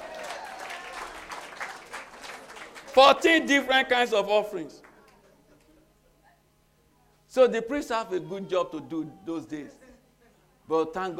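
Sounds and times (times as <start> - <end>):
congregation clapping: 0.0 - 3.7, 4.7 - 5.7
speech: 3.0 - 4.8, 7.4 - 9.8, 10.7 - 11.1.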